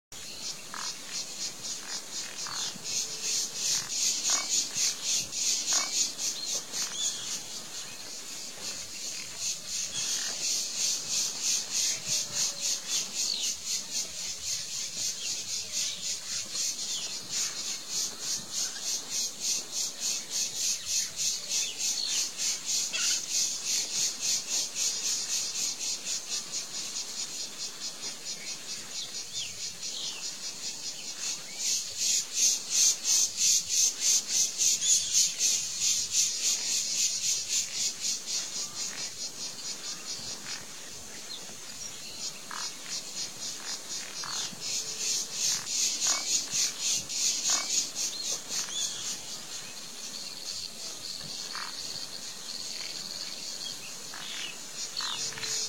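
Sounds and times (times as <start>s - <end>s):
Maguari stork birds seeking food in Pantanal wetlands: 0.2s - 55.6s.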